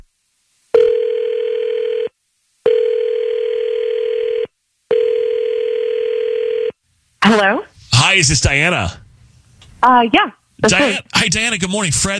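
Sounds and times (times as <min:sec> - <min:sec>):
telephone call ringing out after dialing: 0:00.8 - 0:06.8
speech: 0:08.2 - 0:09.0, 0:09.8 - 0:12.1.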